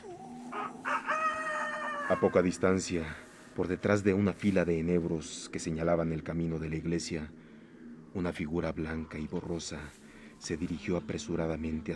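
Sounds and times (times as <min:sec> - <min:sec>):
rooster crowing: 0:00.0 - 0:02.9
speech: 0:02.1 - 0:07.4, 0:08.1 - 0:11.9.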